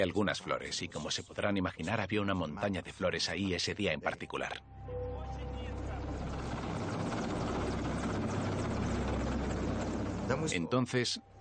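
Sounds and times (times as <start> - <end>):
speech: 0.0 - 5.0, 10.3 - 11.3
government helicopter rotor chopping while descending over a bridge in Moscow: 5.5 - 10.6.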